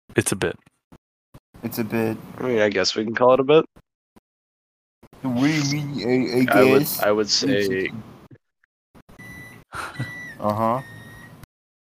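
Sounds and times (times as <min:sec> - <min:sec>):
speech: 0:00.2 - 0:00.7, 0:01.6 - 0:03.8, 0:05.2 - 0:08.1, 0:09.7 - 0:10.9
microwave oven high electronic beep tone: 0:09.2 - 0:11.4.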